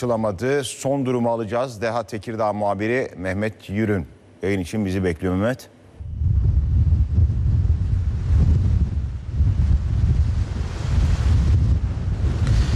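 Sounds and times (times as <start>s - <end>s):
speech: 0.0s - 5.7s
strong storm wind along the coast at Marmara Ereğlisi in Tekirdağ: 6.0s - 12.7s.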